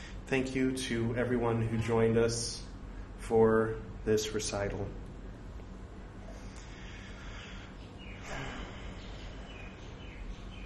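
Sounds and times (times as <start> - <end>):
noisy outdoor background: 0.0 - 10.6
speech: 0.3 - 2.6, 3.3 - 5.0
bird chirping: 6.8 - 10.6.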